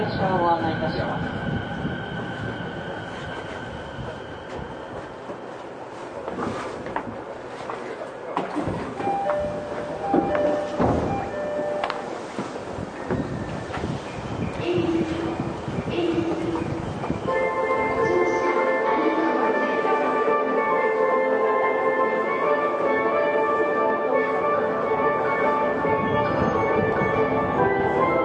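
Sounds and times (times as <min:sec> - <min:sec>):
commuter train wheel-and-track rumble: 0:00.0 - 0:28.2.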